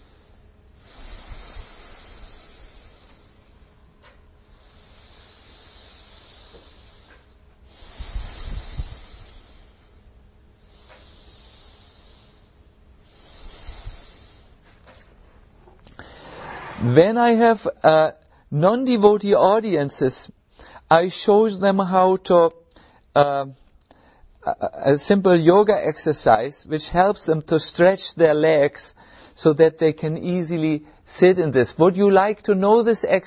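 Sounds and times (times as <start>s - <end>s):
slow deep breathing in and out: 0.0s - 18.5s, 20.4s - 20.9s, 22.7s - 24.8s, 28.9s - 29.4s, 30.8s - 31.1s
speech: 16.8s - 22.6s, 23.2s - 23.6s, 24.4s - 33.2s.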